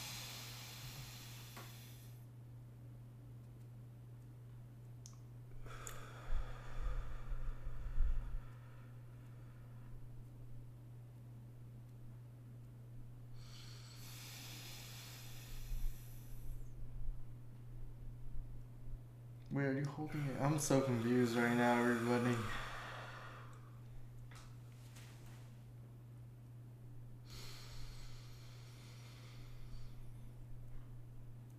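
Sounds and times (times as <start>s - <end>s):
deep breathing with a four-second inhale: 0.0s - 2.2s, 5.5s - 10.1s, 13.3s - 16.8s, 19.9s - 24.5s, 27.2s - 31.0s
steady low hum: 0.0s - 31.5s
speech: 19.6s - 22.6s.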